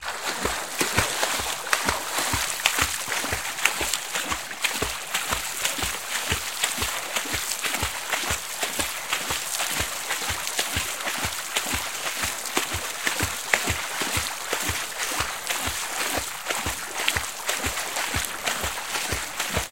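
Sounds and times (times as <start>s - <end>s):
person's footsteps in water: 0.0s - 19.6s.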